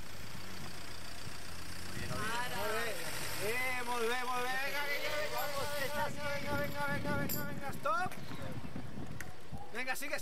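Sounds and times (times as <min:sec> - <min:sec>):
car engine idling: 0:00.0 - 0:05.8
speech: 0:03.4 - 0:08.7, 0:09.8 - 0:10.2.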